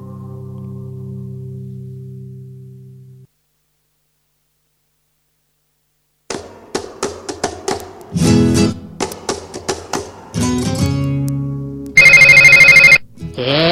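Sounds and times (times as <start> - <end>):
plucked guitar and percussive music: 6.8 - 12.0
telephone ringing with a bright metallic buzz: 12.0 - 13.0.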